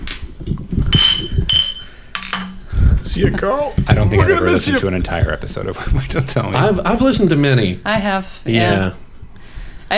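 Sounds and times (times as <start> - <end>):
glasses clinking together in a toast: 0.0 - 2.7
speech: 3.1 - 9.0.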